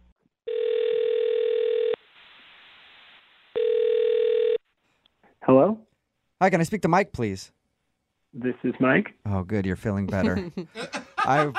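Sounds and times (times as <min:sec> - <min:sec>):
long steady telephone ringback tone: 0:00.5 - 0:02.0, 0:03.6 - 0:04.6
speech: 0:05.6 - 0:07.6, 0:08.3 - 0:11.5
laughter: 0:10.1 - 0:11.5.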